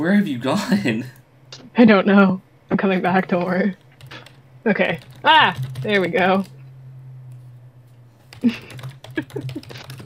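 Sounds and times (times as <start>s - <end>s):
speech: 0.0s - 1.2s, 1.8s - 3.8s, 4.6s - 6.6s, 8.4s - 10.0s
low steady hum: 0.0s - 10.0s
typing on a computer keyboard into a game chat: 4.0s - 6.5s, 8.3s - 10.0s.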